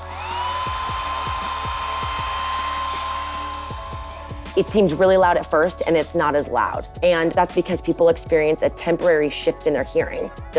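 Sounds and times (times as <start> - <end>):
hair dryer blowing: 0.0 - 5.7
speech: 4.6 - 10.5.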